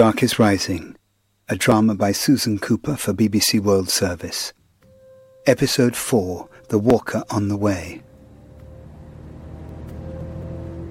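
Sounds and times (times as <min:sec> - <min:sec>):
speech: 0:00.0 - 0:04.6, 0:05.4 - 0:08.1
faint constant whine of a bus engine: 0:00.0 - 0:10.8
bus engine idling with a deep droning rumble: 0:06.4 - 0:10.8.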